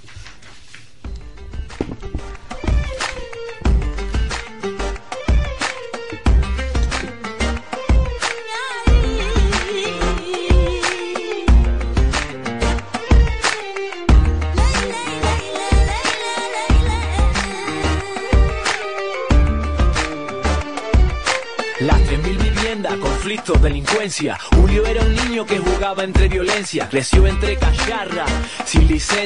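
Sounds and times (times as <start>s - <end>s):
song with Spanish-language vocals and punchy bass beat: 1.6s - 29.2s
speech: 24.0s - 29.2s.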